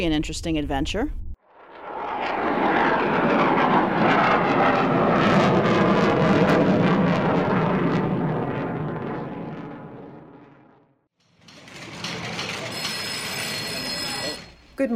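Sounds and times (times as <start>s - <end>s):
speech: 0.0s - 1.2s
aircraft engine powering up for takeoff from runway 9: 1.5s - 10.4s.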